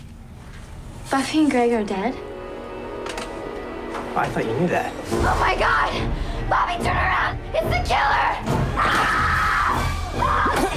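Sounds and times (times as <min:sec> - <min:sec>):
speech: 0:01.1 - 0:02.3, 0:04.2 - 0:09.2
woman screaming during a knife attack in a horror film scene: 0:08.7 - 0:10.7.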